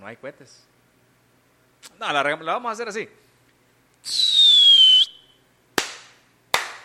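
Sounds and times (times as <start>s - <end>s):
speech: 0.0s - 0.8s, 1.8s - 3.2s, 4.0s - 4.3s
skyrocket whistle set off to celebrate a birthday: 4.0s - 5.5s.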